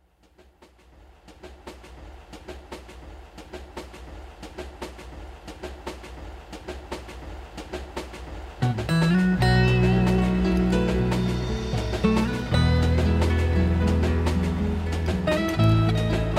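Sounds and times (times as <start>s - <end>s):
train wheels clacking over track joints: 0.0s - 16.3s.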